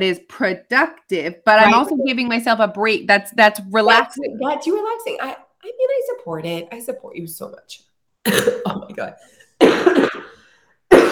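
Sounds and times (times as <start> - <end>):
speech: 0.0 - 10.3
harsh coughs: 8.3 - 8.8, 9.6 - 11.1.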